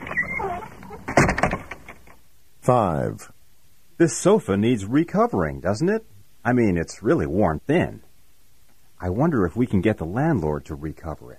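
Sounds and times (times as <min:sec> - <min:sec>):
thin wavering door creak: 0:00.0 - 0:02.2
speech: 0:02.6 - 0:03.4, 0:04.0 - 0:08.1, 0:09.0 - 0:11.3.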